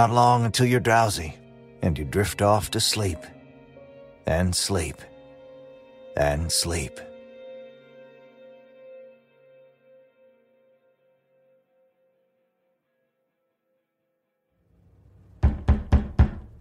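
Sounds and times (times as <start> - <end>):
speech: 0.0 - 3.4, 4.2 - 5.1, 6.2 - 7.1
loud heavy knocks on a door: 15.4 - 16.6.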